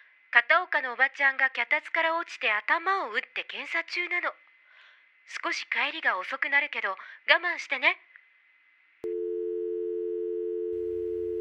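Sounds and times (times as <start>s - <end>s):
speech: 0.4s - 4.4s, 5.3s - 8.1s
telephone line click on hang-up: 9.0s - 11.3s.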